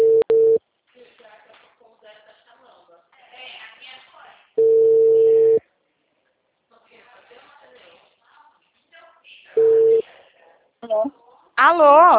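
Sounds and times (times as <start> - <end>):
telephone line tones after a dropped call on a telemarketing system: 0.0 - 0.6, 4.6 - 5.6, 9.6 - 10.0.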